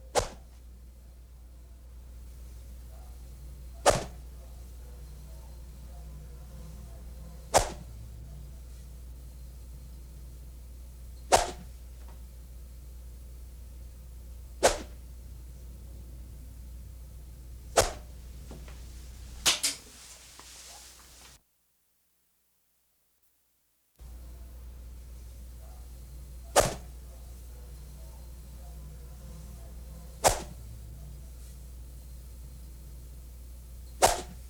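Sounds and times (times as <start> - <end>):
arrow from Japan: 0.1 - 0.5, 3.8 - 4.2, 7.5 - 7.9, 11.3 - 11.7, 14.6 - 15.0, 17.7 - 18.8, 19.4 - 19.9, 26.5 - 26.9, 30.2 - 30.6, 34.0 - 34.4.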